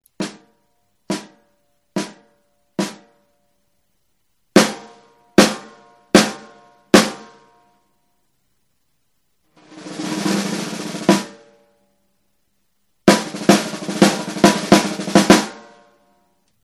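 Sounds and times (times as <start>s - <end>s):
1970s Ludwig LM402 14X6.5 drum: 0.2s - 0.5s, 4.6s - 7.4s, 9.6s - 11.5s, 13.1s - 15.8s.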